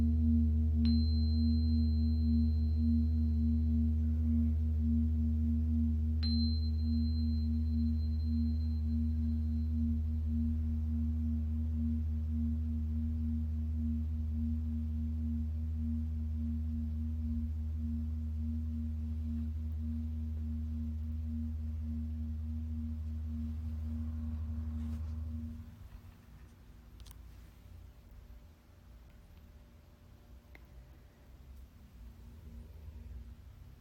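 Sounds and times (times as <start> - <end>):
Tibetan singing bowl ringing with a deep steady drone: 0.0 - 26.0.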